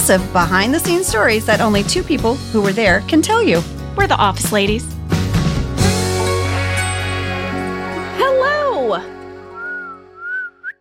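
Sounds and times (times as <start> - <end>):
music: 0.0 - 10.8
speech: 0.1 - 5.0, 8.9 - 9.1
weak breathy human whistle: 9.6 - 10.8.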